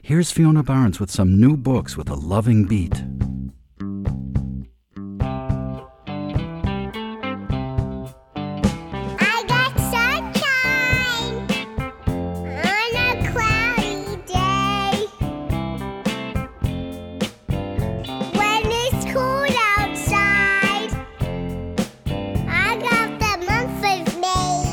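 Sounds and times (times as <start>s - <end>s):
speech: 0.0s - 3.3s
steady instrumental backing music: 3.0s - 24.7s
toddlers singing an upbeat rock and roll tune: 9.2s - 11.4s, 12.6s - 15.1s, 18.4s - 21.0s, 22.5s - 24.7s.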